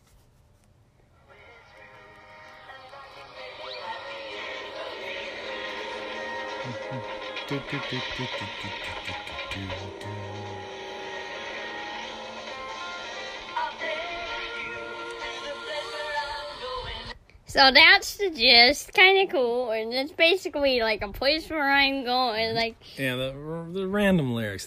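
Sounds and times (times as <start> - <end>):
sweet love song with full instrumental backing: 1.2 - 17.2
speech: 6.7 - 10.8, 17.5 - 24.6.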